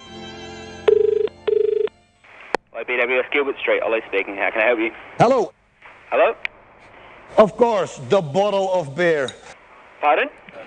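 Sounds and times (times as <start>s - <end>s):
old telephone ringing for an incoming call: 0.9s - 1.9s
speech: 2.9s - 6.5s, 7.3s - 10.5s.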